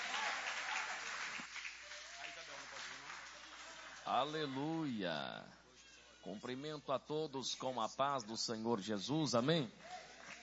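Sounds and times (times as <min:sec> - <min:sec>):
audience applauding: 0:00.0 - 0:04.4, 0:09.8 - 0:10.4
speech: 0:04.1 - 0:05.6, 0:06.2 - 0:10.0.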